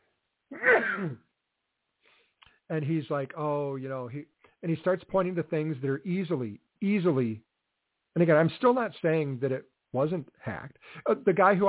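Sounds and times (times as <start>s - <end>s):
person sneezing: 0.5s - 1.2s
speech: 0.6s - 1.2s, 2.7s - 7.5s, 8.2s - 11.6s.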